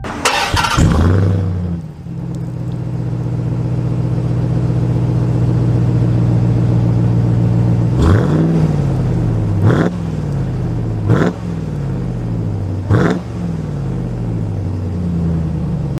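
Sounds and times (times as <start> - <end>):
Dodge Ram TRX pickup truck: 0.0 - 15.9.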